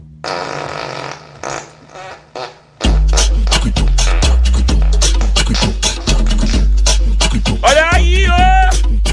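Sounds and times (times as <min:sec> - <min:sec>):
long buzzy fart: 0:00.2 - 0:06.6
loud music beat with heavy bass thumps and sharp percussion: 0:02.8 - 0:09.1.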